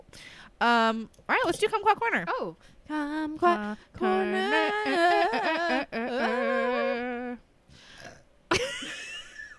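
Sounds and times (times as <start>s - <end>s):
speech: 0.1s - 7.4s
person singing a warbling melodic phrase: 2.9s - 7.4s
loud burp: 7.9s - 8.2s.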